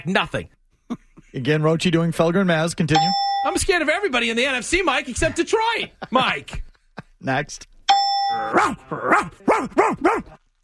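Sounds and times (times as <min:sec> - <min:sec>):
speech: 0:00.0 - 0:00.6, 0:01.3 - 0:07.7, 0:08.3 - 0:10.4
person imitating a dog barking: 0:08.3 - 0:10.4.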